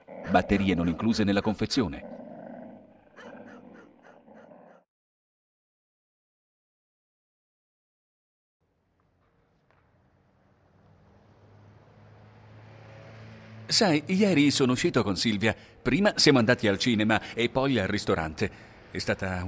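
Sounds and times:
dogs snarling and barking aggressively: 0:00.0 - 0:01.2, 0:01.8 - 0:04.9
speech: 0:00.3 - 0:02.1, 0:13.7 - 0:19.4.

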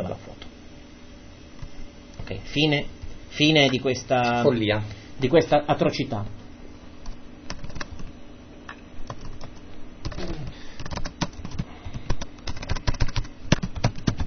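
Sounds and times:
low steady hum: 0:00.0 - 0:14.2
speech: 0:02.3 - 0:06.4
typing on a computer keyboard: 0:07.5 - 0:08.1, 0:09.1 - 0:14.2.

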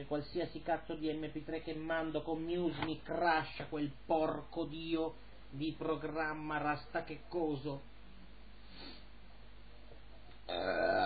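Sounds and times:
speech: 0:00.0 - 0:07.9, 0:10.5 - 0:11.0
loud guttural burp: 0:10.5 - 0:11.0.

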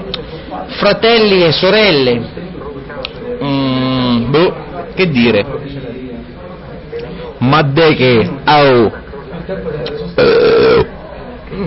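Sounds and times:
speech: 0:00.6 - 0:02.4, 0:04.3 - 0:05.7, 0:07.4 - 0:10.4
loud drawn-out burp after eating sandwiches: 0:10.2 - 0:11.6.

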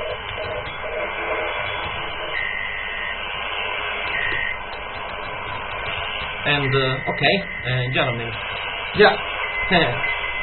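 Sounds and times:
faint brief beeping tones possibly Morse code: 0:00.0 - 0:03.2, 0:03.8 - 0:10.4
shortwave radio static hissing: 0:00.0 - 0:10.4
speech: 0:06.5 - 0:10.2.

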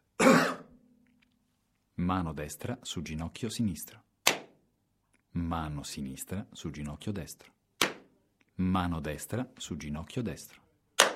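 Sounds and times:
cough: 0:00.2 - 0:00.8
speech: 0:02.1 - 0:04.1, 0:05.4 - 0:07.6, 0:08.6 - 0:10.6.

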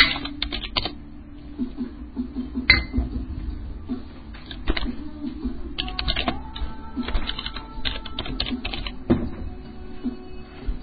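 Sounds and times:
low hum: 0:00.0 - 0:10.8
typing on an Austrian computer keyboard: 0:00.1 - 0:00.9, 0:05.8 - 0:09.0.

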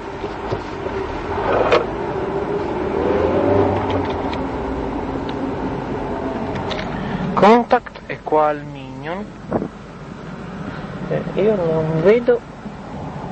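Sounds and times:
car engine accelerating while driving: 0:00.2 - 0:07.6
speech: 0:07.7 - 0:09.7, 0:11.4 - 0:12.5.

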